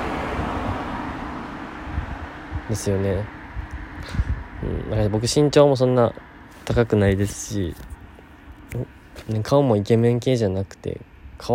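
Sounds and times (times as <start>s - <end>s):
car passing by outside: 0.0s - 4.6s
speech: 2.7s - 3.4s, 4.0s - 7.9s, 8.7s - 11.5s.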